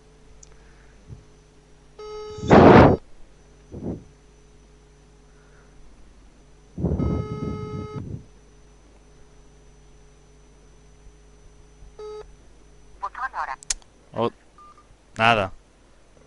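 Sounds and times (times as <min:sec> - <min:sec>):
steady telephone call tone: 0:02.0 - 0:03.0, 0:06.8 - 0:08.3, 0:12.0 - 0:12.4
speech: 0:13.4 - 0:14.4, 0:15.2 - 0:15.6.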